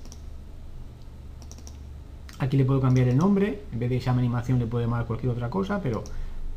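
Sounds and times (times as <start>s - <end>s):
mouse clicks: 0.0s - 0.3s, 1.0s - 3.3s
low hum: 0.0s - 6.5s
speech: 2.4s - 6.2s.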